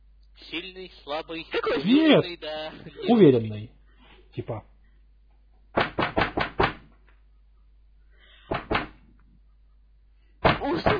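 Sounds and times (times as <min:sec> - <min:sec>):
speech: 0:00.5 - 0:04.7
firm loud knocking on a door: 0:05.8 - 0:06.8, 0:08.5 - 0:09.0.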